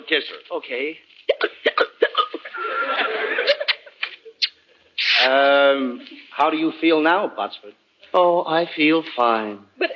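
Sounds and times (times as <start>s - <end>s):
speech: 0.1s - 1.8s, 5.2s - 9.9s
person hiccuping: 1.3s - 2.5s
laughter: 2.4s - 4.4s.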